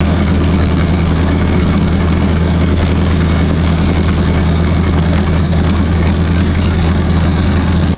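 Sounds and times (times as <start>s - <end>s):
pontoon boat engine revving and idling: 0.0s - 7.9s.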